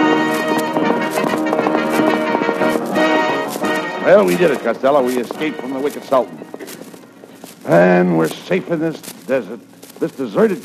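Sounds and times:
busy music: 0.0s - 7.9s
horse hooves clip-clopping: 0.0s - 10.6s
speech: 4.1s - 6.6s, 7.7s - 10.6s.

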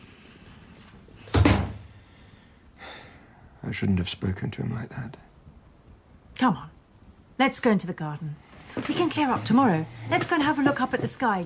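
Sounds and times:
front door shutting as a guest leaves: 1.3s - 1.8s
speech: 3.6s - 5.3s, 6.4s - 6.7s, 7.4s - 11.4s.

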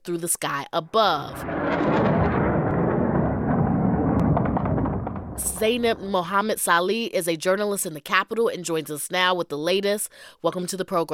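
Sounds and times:
speech: 0.0s - 2.4s, 5.4s - 11.1s
explosions echoing across a city: 1.1s - 6.3s.

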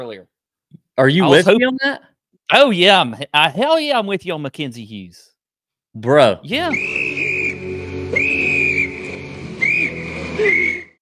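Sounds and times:
speech: 0.0s - 5.3s, 6.0s - 7.0s
person whistling a short tune: 6.7s - 10.9s.

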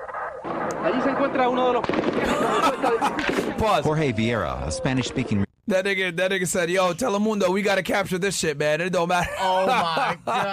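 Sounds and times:
rapid gunshots: 0.0s - 4.0s
speech: 0.8s - 10.5s
laughter: 2.2s - 4.7s, 9.1s - 10.5s.

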